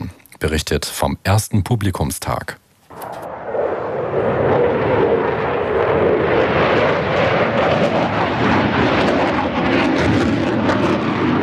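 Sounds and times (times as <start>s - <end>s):
speech: 0.4s - 2.6s
military fighter jets roaring overhead: 2.9s - 11.4s.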